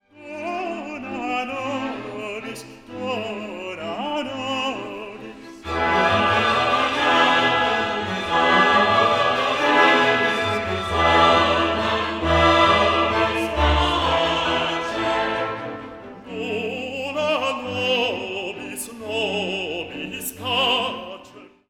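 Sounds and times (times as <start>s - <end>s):
tenor and bass voices singing: 0.4s - 21.4s.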